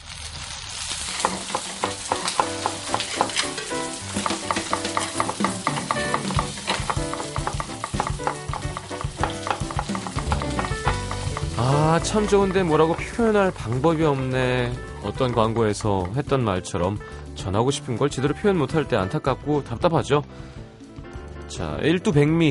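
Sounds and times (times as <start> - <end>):
Hanwoo Korean beef sizzling on a hot grill: 0.0 - 17.3
speech: 11.6 - 20.5, 21.5 - 22.4.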